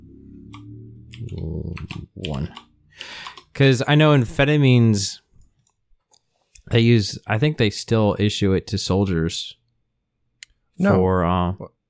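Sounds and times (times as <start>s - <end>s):
clicky mechanical keyboard keystrokes: 0.5s - 3.6s
speech: 1.2s - 5.2s, 6.7s - 9.6s, 10.8s - 11.8s.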